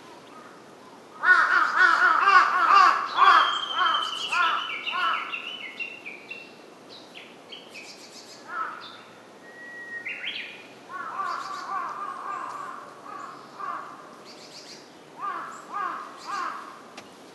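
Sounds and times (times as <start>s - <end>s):
Large-billed crow giving harsh caws: 1.2s - 5.3s, 8.5s - 8.9s, 10.9s - 14.1s, 15.2s - 16.9s
other birds giving thin high whistles and chirps: 3.2s - 8.4s, 9.4s - 10.7s.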